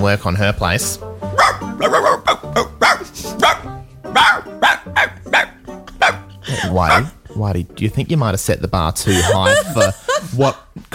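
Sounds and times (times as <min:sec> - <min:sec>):
speech: 0:00.0 - 0:01.1, 0:06.8 - 0:10.9
dog barking: 0:01.4 - 0:06.2, 0:06.8 - 0:07.2
laughter: 0:05.6 - 0:07.5, 0:09.0 - 0:10.6.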